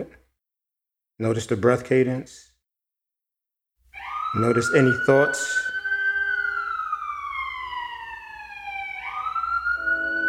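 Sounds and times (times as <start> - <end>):
speech: 1.2 - 2.5, 4.3 - 5.7
passing emergency vehicle siren wailing: 4.0 - 10.2.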